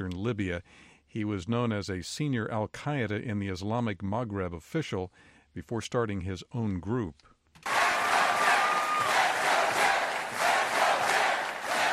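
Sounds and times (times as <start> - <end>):
speech: 0.2 - 7.7
large crowd chanting a campaign slogan in unison: 7.7 - 11.9.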